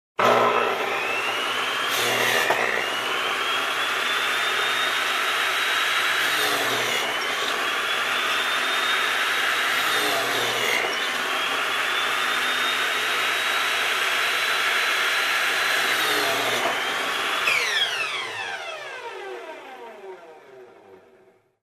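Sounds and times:
construction drill: 0:00.2 - 0:21.6.

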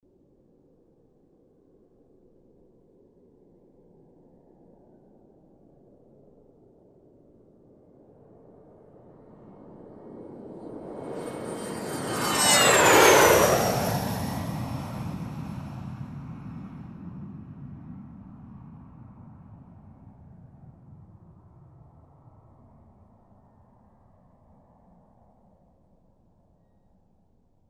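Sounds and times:
jet aircraft flying by with a whirring sound: 0:08.3 - 0:22.0.

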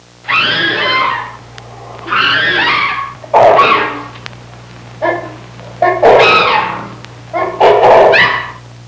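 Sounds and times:
chimpanzee screams in a jungle: 0:00.3 - 0:01.4, 0:02.0 - 0:04.1, 0:06.0 - 0:06.9, 0:08.1 - 0:08.6.

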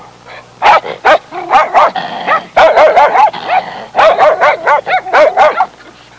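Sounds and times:
dogs about to fight: 0:00.8 - 0:05.5.

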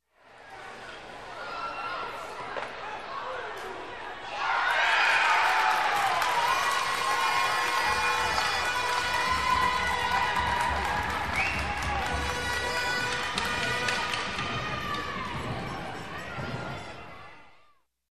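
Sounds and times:
crowd at a game cheering: 0:01.4 - 0:17.8
crowd horns at a game blowing: 0:06.8 - 0:15.6.

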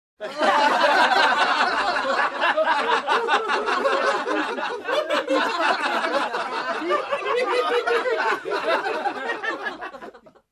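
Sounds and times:
gathered people laughing together: 0:00.2 - 0:10.5.

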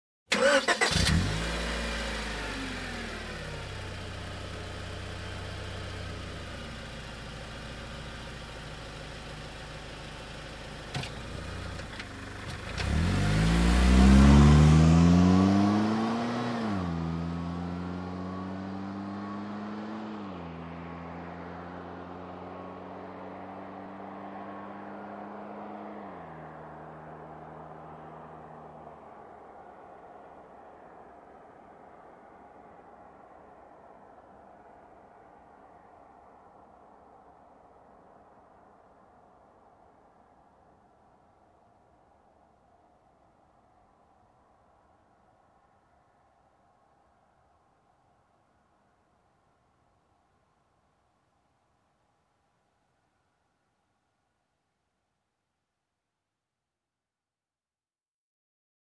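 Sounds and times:
car engine ignition and driving off: 0:00.3 - 0:30.2.

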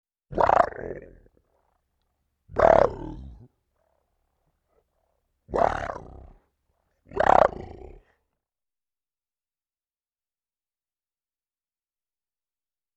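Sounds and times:
deep growl: 0:02.5 - 0:03.6, 0:05.5 - 0:06.4, 0:07.1 - 0:08.2.

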